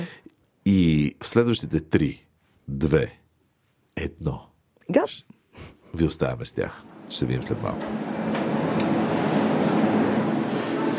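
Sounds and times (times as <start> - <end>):
speech: 0.0 - 3.2, 4.0 - 8.2
metro train rumbling in motion: 6.8 - 10.9.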